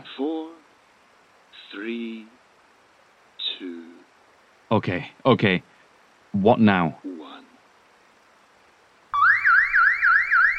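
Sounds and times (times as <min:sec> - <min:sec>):
speech: 0:04.7 - 0:05.7, 0:06.3 - 0:07.0
electronic alarm siren warbling in rising sweeps: 0:09.2 - 0:10.5.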